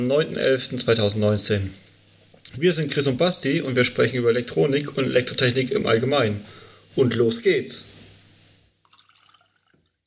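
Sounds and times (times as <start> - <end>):
speech: 0.0 - 1.9, 2.5 - 7.9
wine pouring into a glass: 8.8 - 10.0.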